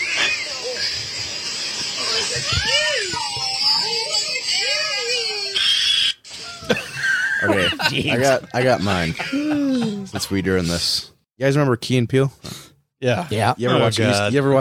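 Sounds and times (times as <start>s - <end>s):
baby raccoon screaming: 0.0s - 1.1s, 2.0s - 6.5s
steady hiss: 0.0s - 5.4s, 6.3s - 8.4s
laughter: 6.3s - 10.8s
speech: 7.9s - 14.6s.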